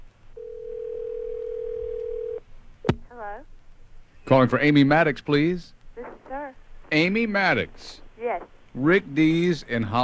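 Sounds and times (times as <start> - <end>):
telephone ringback tone on an outgoing call: 0.4 - 2.4
speech: 3.2 - 3.6, 4.3 - 5.8, 6.4 - 10.0.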